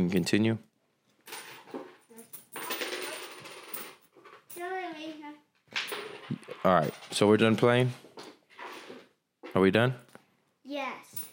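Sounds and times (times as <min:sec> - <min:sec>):
speech: 0:00.1 - 0:00.7, 0:06.6 - 0:08.0, 0:09.5 - 0:10.0
quarters dropping and clattering onto a wooden floor: 0:01.2 - 0:04.7, 0:05.7 - 0:07.4, 0:11.1 - 0:11.3
child's voice: 0:02.1 - 0:02.3, 0:04.6 - 0:05.5, 0:10.6 - 0:11.3.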